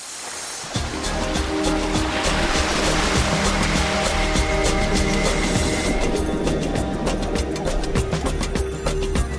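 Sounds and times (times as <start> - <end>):
water rushing and splashing against the hull: 0.0 - 9.2
salmon farm supply ship engine droning: 0.8 - 9.2.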